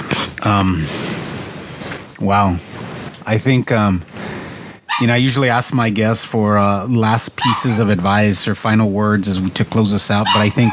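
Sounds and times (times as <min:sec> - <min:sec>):
speech: 0:00.5 - 0:01.1, 0:02.2 - 0:04.1, 0:05.0 - 0:10.7
dog barking and yipping: 0:04.9 - 0:05.2, 0:07.4 - 0:08.0, 0:10.2 - 0:10.7.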